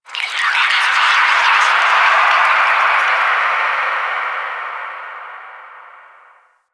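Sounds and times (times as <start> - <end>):
ambience: 0.1 - 6.5.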